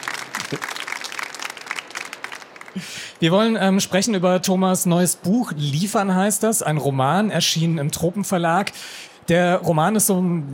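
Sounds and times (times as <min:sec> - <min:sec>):
audience applauding to welcome a guest: 0:00.0 - 0:03.2
speech: 0:00.5 - 0:00.8, 0:02.8 - 0:10.5.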